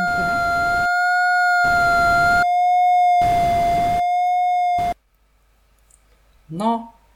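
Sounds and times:
steady electronic tone with a faint pitch waver: 0.0s - 5.0s
speech: 6.6s - 6.9s.

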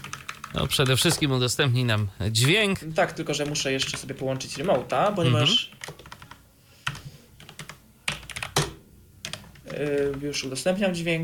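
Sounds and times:
computer keyboard keys clacking as someone types a shortcut: 0.0s - 1.3s, 3.3s - 4.7s, 5.7s - 10.4s
speech: 0.6s - 5.8s, 9.8s - 11.2s.

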